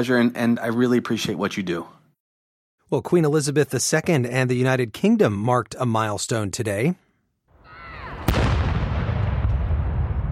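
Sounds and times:
speech: 0.0 - 2.0, 2.9 - 7.0
World War I-era cannon firing a salute outdoors: 8.1 - 10.3.

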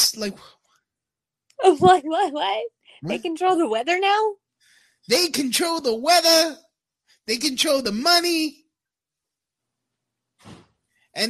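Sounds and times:
speech: 0.1 - 0.6, 1.6 - 4.4, 5.0 - 8.6, 10.4 - 10.6
door slamming: 10.4 - 10.7.

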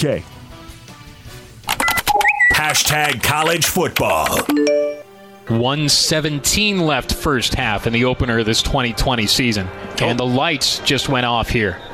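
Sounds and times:
speech: 0.0 - 0.4, 2.6 - 11.9
telephone keypad tones dialing a number: 1.7 - 2.7, 4.5 - 5.1.

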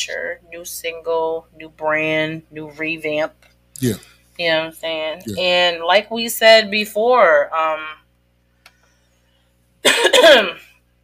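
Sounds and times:
speech: 0.0 - 8.0, 9.8 - 10.7
person coughing with a lost voice: 9.8 - 10.6.

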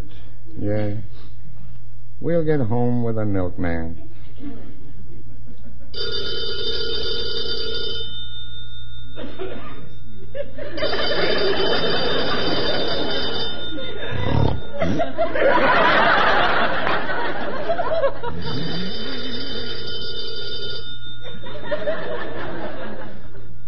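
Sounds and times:
speech: 0.6 - 1.4, 2.2 - 4.8
people chuckling: 4.0 - 6.0, 9.2 - 19.6, 21.2 - 23.6
telephone bell ringing: 6.0 - 17.3, 18.0 - 23.6.

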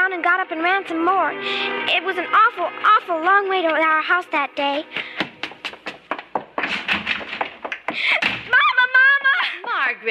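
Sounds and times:
speech: 0.6 - 5.0
thuds and bumps: 4.9 - 9.3
door slamming shut: 6.6 - 8.6.

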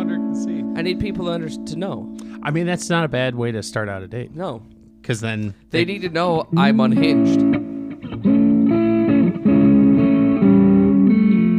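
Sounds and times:
electric guitar through amp tone preset playing distorted chords: 0.0 - 2.4, 5.8 - 11.5
speech: 0.4 - 7.5.

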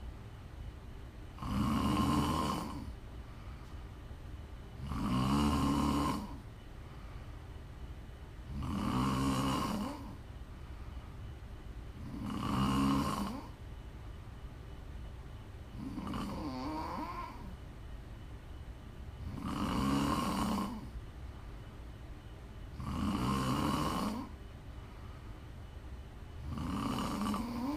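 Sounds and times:
faint breathy hiss: 1.3 - 14.4, 15.0 - 27.7
person snoring loudly: 1.4 - 3.0, 4.8 - 6.4, 8.5 - 10.2, 12.0 - 13.6, 15.8 - 17.6, 19.2 - 21.0, 22.7 - 24.3, 26.4 - 27.7.

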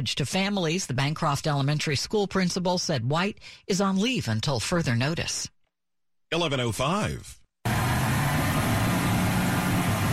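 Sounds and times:
speech: 0.0 - 5.6, 6.3 - 7.4
garbage truck engine idling: 7.7 - 10.1.

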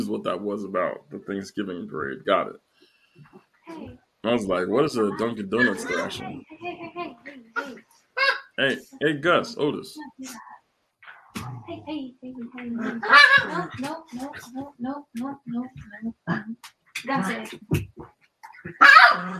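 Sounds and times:
speech: 0.0 - 7.7, 8.6 - 10.5, 11.4 - 19.3
dogs barking and yipping: 12.8 - 13.8, 18.6 - 19.3.

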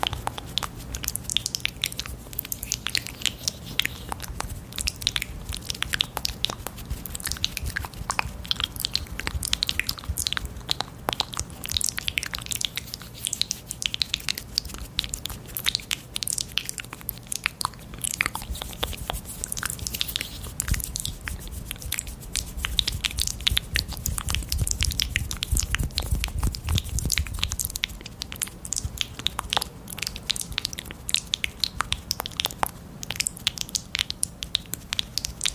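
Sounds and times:
faint low hum: 0.0 - 35.5
wet mouth sounds with small clicks and smacks: 0.0 - 35.5.

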